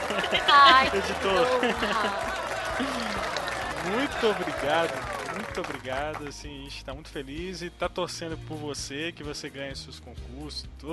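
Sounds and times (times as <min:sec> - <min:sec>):
laughter: 0:00.0 - 0:06.3
small group applauding: 0:00.0 - 0:06.6
speech: 0:00.2 - 0:10.9.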